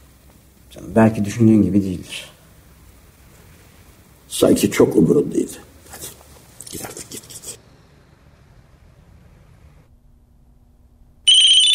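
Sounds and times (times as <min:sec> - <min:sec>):
speech: 0:00.7 - 0:02.4, 0:04.3 - 0:05.7, 0:06.7 - 0:07.0
telephone ringing with a loud shrill electronic tone: 0:11.3 - 0:11.7.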